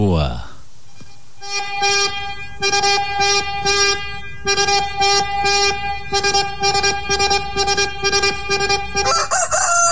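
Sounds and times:
speech: 0.2 - 0.5, 2.6 - 9.6
rooster crowing: 9.0 - 9.8.

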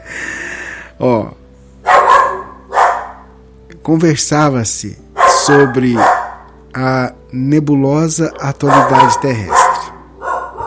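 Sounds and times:
speech: 1.0 - 1.4, 3.9 - 6.2, 6.8 - 9.6
small dogs barking: 1.8 - 3.3, 5.2 - 6.6, 8.3 - 10.6.

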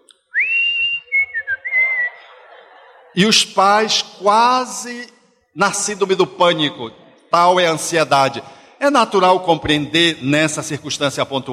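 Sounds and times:
person whistling a short melodic phrase: 0.3 - 2.2
laughter: 1.3 - 4.7
speech: 3.2 - 11.5.

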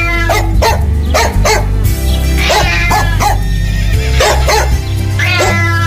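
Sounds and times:
dog barking: 0.1 - 1.7, 2.4 - 3.4, 4.2 - 5.7.

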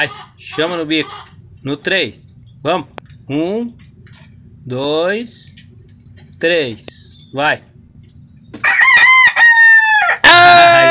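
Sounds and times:
speech: 0.0 - 3.8, 4.7 - 5.6, 6.4 - 7.7
old rooster crowing: 8.6 - 10.8.

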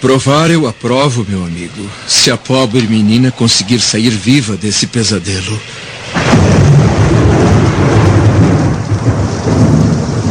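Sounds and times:
speech: 0.0 - 8.1
heavy rain: 0.0 - 10.2
deep rumbling thunder: 5.9 - 10.2.

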